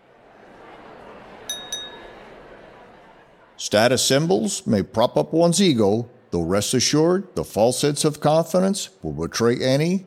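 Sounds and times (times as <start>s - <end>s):
glasses clinking in a toast: 1.5s - 2.3s
speech: 3.6s - 10.0s.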